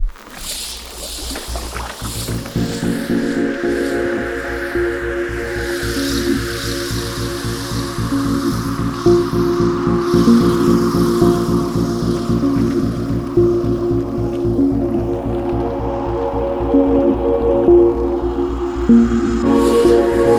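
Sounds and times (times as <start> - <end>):
beach ambience: 0.0 - 20.3
lounge chillout megamix with beach ambiance: 1.5 - 20.3.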